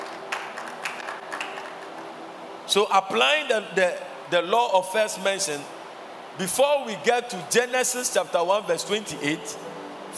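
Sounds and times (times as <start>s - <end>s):
church audience clapping during a sermon: 0.0s - 2.2s
speech: 2.7s - 5.8s, 6.4s - 10.1s.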